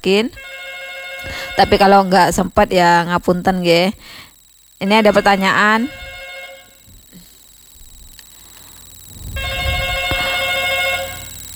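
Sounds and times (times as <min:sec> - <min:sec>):
speech: 0:00.0 - 0:00.6, 0:01.2 - 0:04.2, 0:04.8 - 0:06.2
telephone ringing with a steady repeating electronic tone: 0:00.4 - 0:03.4, 0:04.8 - 0:07.0, 0:09.4 - 0:11.5.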